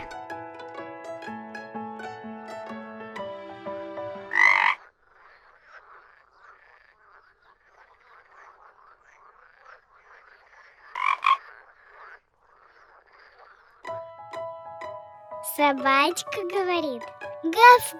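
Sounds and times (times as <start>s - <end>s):
melodic music: 0.0s - 4.4s, 13.9s - 17.9s
frog croaking: 4.3s - 14.0s
speech: 15.6s - 17.9s.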